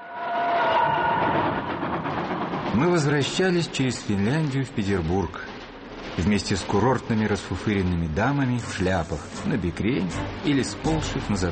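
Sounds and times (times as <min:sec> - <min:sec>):
train travelling on a railway: 0:00.0 - 0:11.5
train wheels clickety-clack: 0:01.6 - 0:08.9
speech: 0:02.7 - 0:05.5, 0:06.1 - 0:11.5.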